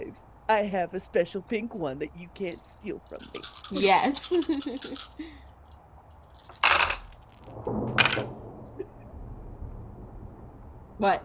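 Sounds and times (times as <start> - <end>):
speech: 0.5 - 5.4, 11.0 - 11.2
dice clattering across a hard table: 3.1 - 8.3.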